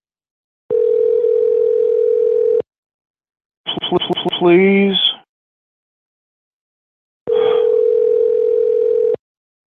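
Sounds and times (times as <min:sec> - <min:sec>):
telephone line dial tone: 0:00.7 - 0:02.7, 0:07.3 - 0:09.2
speech: 0:04.0 - 0:05.1.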